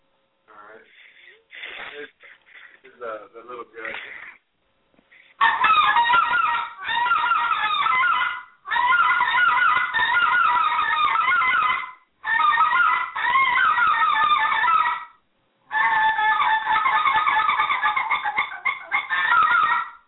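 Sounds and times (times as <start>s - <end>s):
person speaking short phrases: 0.5s - 4.4s
goose honks blown on a small-gut goose call: 5.4s - 15.1s, 15.7s - 20.0s.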